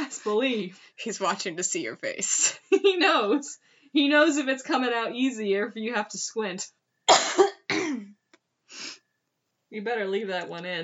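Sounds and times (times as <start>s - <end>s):
speech: 0.2s - 7.5s, 9.7s - 10.8s
raspy throaty coughs: 7.1s - 8.1s.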